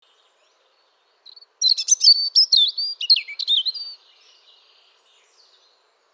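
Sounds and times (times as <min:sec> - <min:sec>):
European robin Erithacus rubecula singing: 0:01.2 - 0:05.6.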